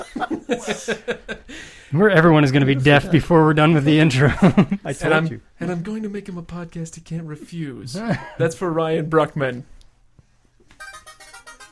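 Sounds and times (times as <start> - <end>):
laughter: 0.0 - 1.5, 4.2 - 4.8
speech: 0.1 - 1.3, 1.9 - 9.8
mobile phone ringing with a bright electronic ringtone: 10.8 - 11.7.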